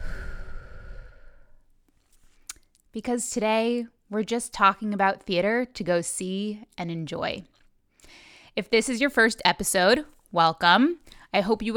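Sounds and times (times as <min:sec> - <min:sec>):
long breathy exhale during a guided breathing pause: 0:00.0 - 0:01.7
speech: 0:02.9 - 0:07.5, 0:08.1 - 0:11.7.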